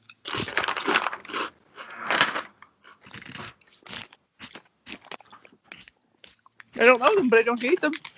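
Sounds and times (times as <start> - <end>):
crispy fish snack being chewed: 0.0 - 1.5, 3.1 - 8.1
speech: 6.8 - 8.1.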